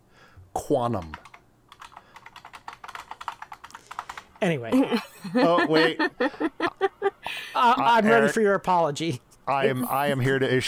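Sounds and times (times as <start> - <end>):
speech: 0.7 - 1.2, 4.4 - 10.6
typing on a clicky computer keyboard: 0.9 - 4.5
laughter: 4.7 - 8.2.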